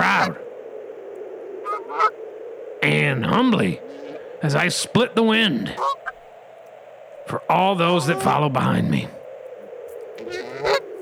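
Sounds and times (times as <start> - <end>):
geese honking: 0.0 - 0.4, 1.6 - 2.2, 2.8 - 6.4, 7.3 - 10.9
speech: 2.8 - 6.1, 7.3 - 9.2.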